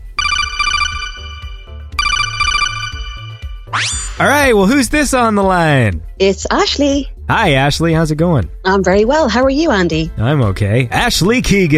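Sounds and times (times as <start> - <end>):
phone ringtone for an incoming call: 0.0 - 3.8
speech: 3.8 - 11.7.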